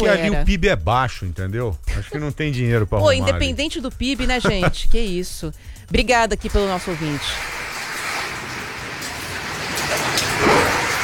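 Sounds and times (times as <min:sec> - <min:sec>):
laughter: 0:00.0 - 0:05.0
speech: 0:00.0 - 0:07.6
rain falling on surfaces in the city of São Paulo: 0:06.5 - 0:11.0.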